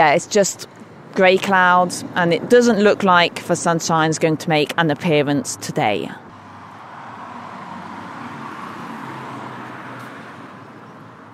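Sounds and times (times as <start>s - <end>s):
speech: 0.0s - 6.2s
traffic road noise of cars passing: 0.0s - 11.3s.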